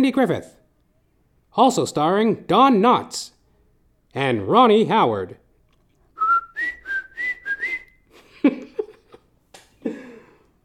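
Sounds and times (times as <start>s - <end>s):
speech: 0.0s - 0.6s, 1.5s - 3.4s, 4.1s - 5.4s
person whistling a brief bright tune: 6.2s - 8.1s
breathy chuckles and soft vocal sounds: 8.1s - 10.5s.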